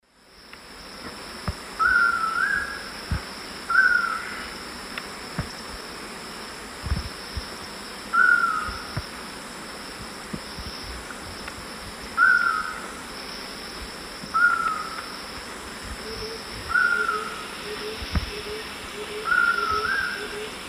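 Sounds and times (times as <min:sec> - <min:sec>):
Lipaugus vociferans calling at lek in Eastern Lowlands of South America: 0:01.8 - 0:02.8, 0:03.7 - 0:04.5, 0:08.1 - 0:08.9, 0:12.2 - 0:12.8, 0:14.3 - 0:15.1, 0:16.0 - 0:20.6.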